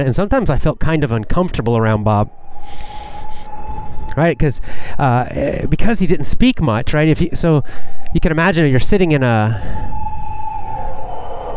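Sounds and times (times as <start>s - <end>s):
speech: 0.0s - 3.0s, 4.2s - 10.1s
emergency vehicle siren passing outside: 1.0s - 5.2s, 7.8s - 11.5s.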